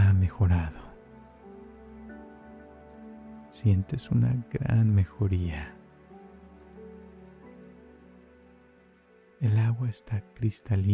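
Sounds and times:
rain falling: 0.0 - 10.9
speech: 0.3 - 0.9, 3.5 - 5.8, 9.4 - 10.9.

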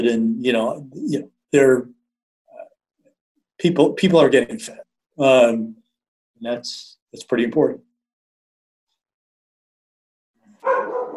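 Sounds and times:
speech: 0.0 - 2.0, 3.6 - 5.8, 6.4 - 7.9
dog barking: 10.6 - 11.1.

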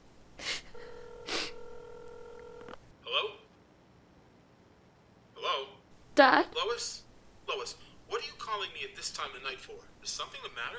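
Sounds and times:
electronic telephone ringing tone on the line: 0.7 - 2.9
speech: 6.2 - 7.0, 7.6 - 10.7.

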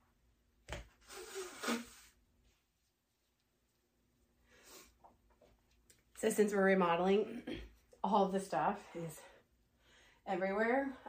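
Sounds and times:
person blowing nose: 0.9 - 2.3
speech: 6.2 - 9.3, 10.3 - 11.0.

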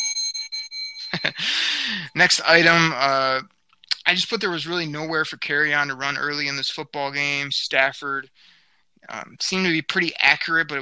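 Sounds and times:
small bell ringing: 0.0 - 1.4
laughter: 1.0 - 7.5
speech: 1.2 - 10.7.

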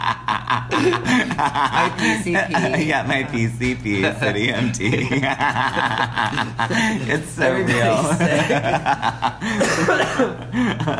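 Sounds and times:
person chuckling and laughing: 0.0 - 3.1, 4.0 - 10.9
speech: 0.1 - 10.9
person coughing into a scarf: 9.4 - 10.6.

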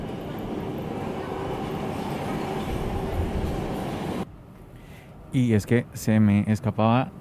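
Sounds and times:
train arriving: 0.0 - 4.3
speech: 5.3 - 7.1.

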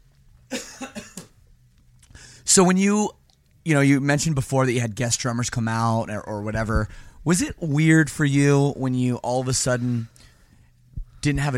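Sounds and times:
person coughing from a tickled throat: 0.5 - 1.4
speech: 2.5 - 10.3, 11.2 - 11.5.

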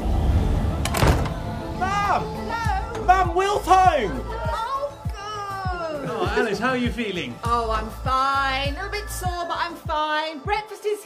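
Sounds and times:
low rumbling background: 0.0 - 5.1
heavy thud: 0.8 - 1.6
speech: 3.1 - 4.4, 6.1 - 11.0.

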